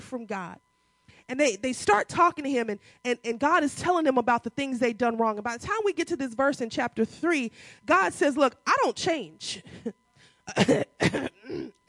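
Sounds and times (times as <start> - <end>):
speech: 0.1 - 0.7, 1.3 - 11.8
person clearing throat: 10.5 - 11.8.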